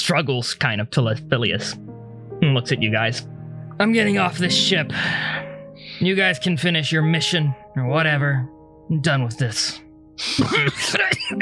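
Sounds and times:
speech: 0.0s - 5.4s, 6.0s - 11.3s
raspy voice acting out coughing in character: 10.2s - 11.3s
raspy voice throat-clearing: 10.2s - 11.3s.

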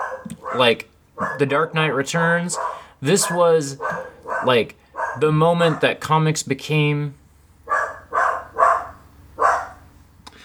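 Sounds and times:
dog barking: 0.0s - 6.0s, 7.6s - 9.9s
speech: 0.6s - 7.2s.

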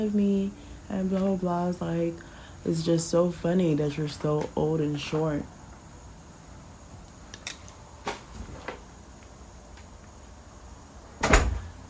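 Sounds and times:
speech: 0.0s - 5.6s
quiet room hum: 0.0s - 11.8s
door clicks and knocks: 11.2s - 11.7s
door shutting thud: 11.2s - 11.8s.

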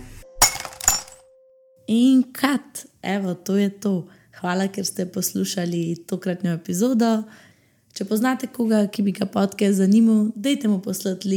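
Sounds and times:
glass shards tinkling: 0.4s - 1.2s
wine glass shattering: 0.4s - 1.2s
speech: 1.9s - 11.3s.

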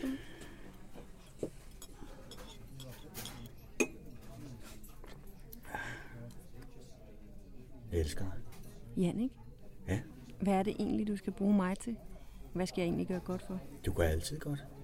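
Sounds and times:
quiet clatter of cutlery at a table: 1.0s - 5.4s
glasses clinking in a toast: 1.3s - 4.3s
speech: 8.0s - 8.4s, 9.0s - 14.8s.

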